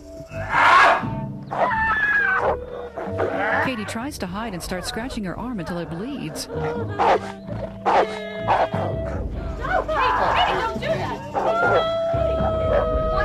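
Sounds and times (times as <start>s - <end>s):
dog howl-like yelps: 0.4s - 3.7s, 6.4s - 10.7s, 11.3s - 13.2s
speech: 3.8s - 9.3s
dog barking: 6.6s - 8.7s.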